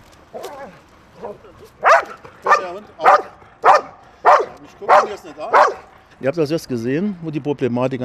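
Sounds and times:
dog whining with soft yips: 0.3s - 5.9s
speech: 0.7s - 3.3s, 4.6s - 8.0s
dog on a leash barking while tugging a dummy package: 1.8s - 5.9s.

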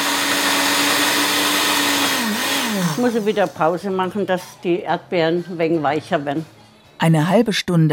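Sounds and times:
blender crushing ice and strawberries in a music pub: 0.0s - 3.6s
speech: 3.0s - 7.9s.

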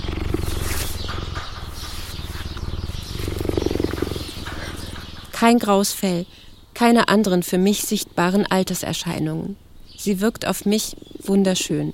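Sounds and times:
cheetah purring: 0.0s - 5.7s, 10.5s - 11.9s
speech: 5.4s - 11.9s.

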